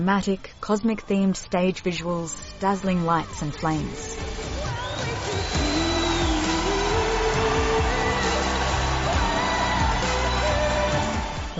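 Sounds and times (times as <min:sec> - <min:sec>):
speech: 0:00.0 - 0:05.6
large crowd roaring and cheering after a song contest performance: 0:04.2 - 0:11.5
people in the crowd whistling: 0:04.6 - 0:11.5
people in the crowd whooping: 0:04.6 - 0:11.5.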